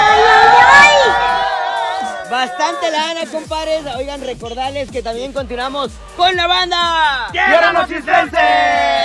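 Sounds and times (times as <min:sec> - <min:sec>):
crowd shouting and cheering: 0:00.0 - 0:03.5, 0:07.0 - 0:09.0
speech: 0:02.9 - 0:09.0.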